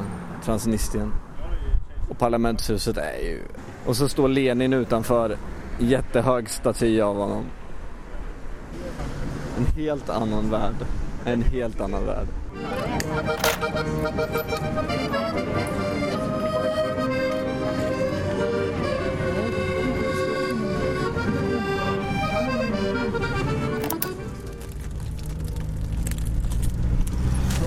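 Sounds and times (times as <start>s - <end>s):
road noise inside a moving bus: 0.0s - 27.6s
speech: 0.4s - 1.3s, 2.1s - 7.6s, 8.7s - 16.0s
engine rumble inside a moving bus travelling away from Tiraspol: 12.3s - 27.6s.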